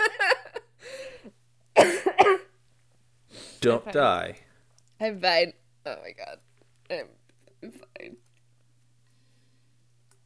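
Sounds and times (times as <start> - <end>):
laughter: 0.0 - 0.7
person coughing: 1.8 - 2.5, 7.0 - 8.2
speech: 3.6 - 8.2.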